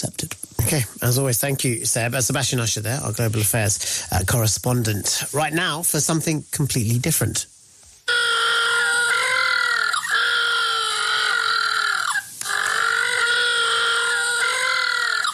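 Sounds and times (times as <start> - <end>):
speech: 0.0 - 7.6
little blue penguins calling: 8.1 - 15.3.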